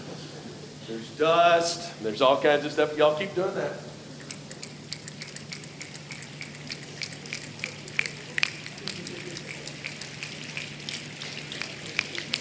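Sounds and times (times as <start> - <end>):
speech: 0.9 - 3.9
audience at a live stage show pattering hands to imitate rain: 6.2 - 12.4.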